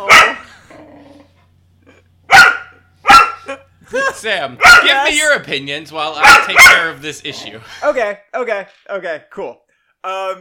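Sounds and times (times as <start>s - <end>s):
unhappy dog barking: 0.0s - 0.5s, 2.3s - 3.5s, 4.6s - 5.0s, 6.2s - 7.0s
speech: 3.9s - 10.3s.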